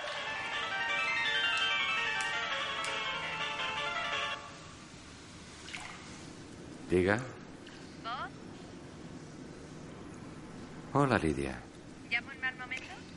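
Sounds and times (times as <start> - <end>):
melodic mobile phone ringtone: 0.0 - 4.5
speech: 6.9 - 7.4, 11.0 - 11.7.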